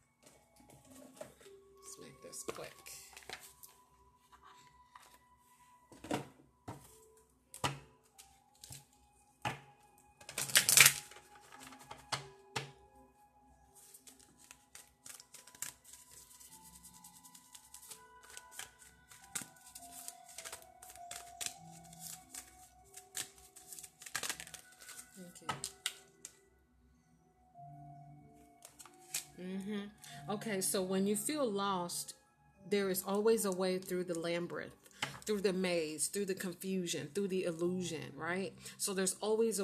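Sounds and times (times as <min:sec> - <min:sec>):
speech: 0:02.3 - 0:03.0, 0:29.5 - 0:39.6
love oracle cards being shuffled by hand: 0:10.2 - 0:12.2, 0:13.8 - 0:26.4, 0:28.6 - 0:29.3.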